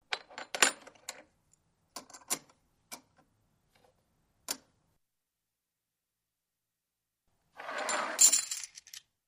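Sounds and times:
coins moving: 7.6 - 9.1.

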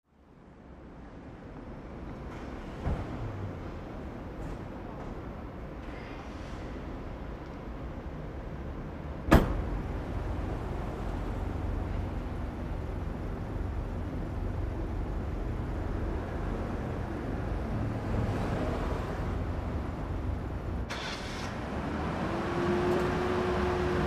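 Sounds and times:
trucks driving in and away in a city industrial area: 0.2 - 24.0
various trucks starting in a city industrial area: 20.8 - 24.0.

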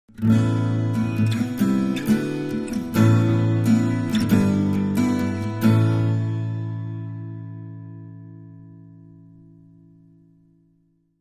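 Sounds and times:
acoustic guitar ballad: 0.1 - 11.1.

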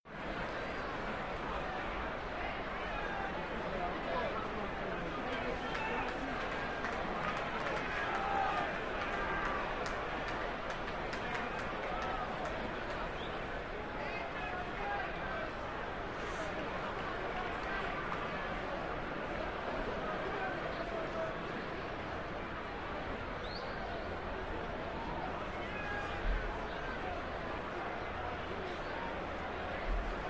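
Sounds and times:
sports arena crowd oohing and cheering: 0.1 - 30.2.

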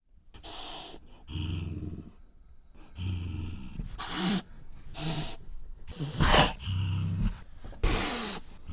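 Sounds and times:
angry cat hissing in a fight: 0.4 - 1.4, 3.6 - 8.6.

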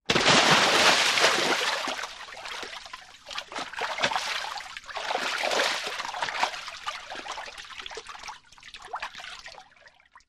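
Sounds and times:
large water splash: 0.1 - 2.8, 3.4 - 6.6.

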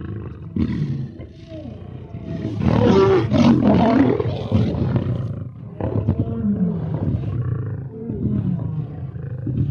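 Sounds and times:
lion roaring and growling: 0.0 - 9.7.

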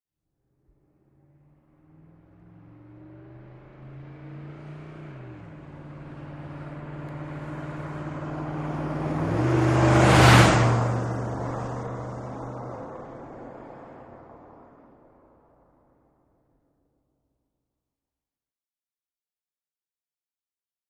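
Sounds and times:
Humvee passing fast: 1.1 - 15.5.

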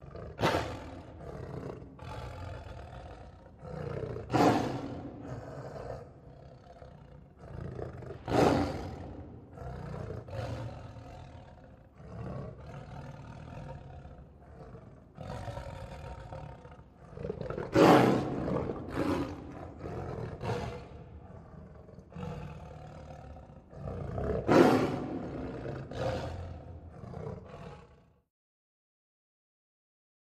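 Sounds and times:
lion snarling roar: 0.0 - 28.2.

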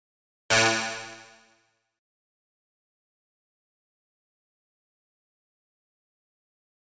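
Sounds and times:
electronic bounce sound: 0.5 - 1.5.

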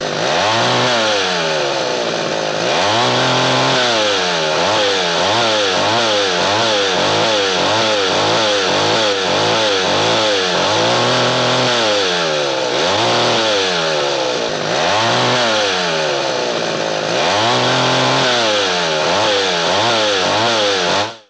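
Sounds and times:
big chainsaw revving: 0.0 - 21.2.

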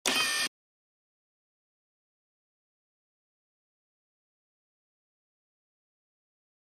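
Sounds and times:
camera servo motors: 0.0 - 0.5.

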